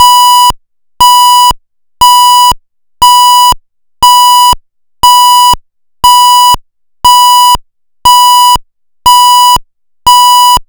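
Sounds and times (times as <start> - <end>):
interrupted PFEER general alarm tone of a Pfannenberg signalling device: 0.0 - 0.4, 1.0 - 1.4, 3.0 - 10.6.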